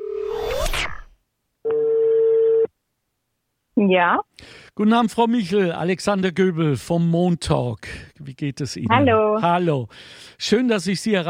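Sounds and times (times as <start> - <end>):
brief rising telephone tone while dialing: 0.0 - 0.5
steady mid-pitched telephone call tone: 1.6 - 2.7
speech: 3.8 - 11.2.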